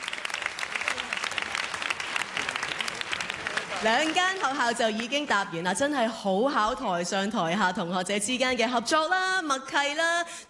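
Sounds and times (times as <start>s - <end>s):
audience applause at a school quiz contest: 0.0s - 5.4s
speech: 3.8s - 10.4s.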